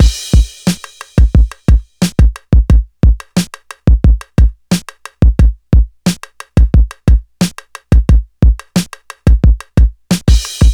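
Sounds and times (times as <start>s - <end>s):
89 bpm drum beat loop in A key: 0.0s - 10.7s.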